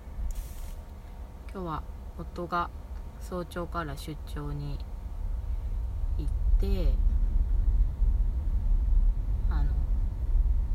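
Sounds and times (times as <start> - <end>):
car in motion heard from inside the cabin: 0.0 - 10.7
speech: 1.5 - 4.9, 6.2 - 7.1.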